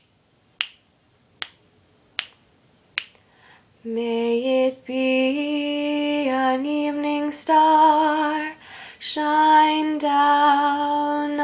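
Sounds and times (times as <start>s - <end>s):
alto voice singing: 3.8s - 11.4s.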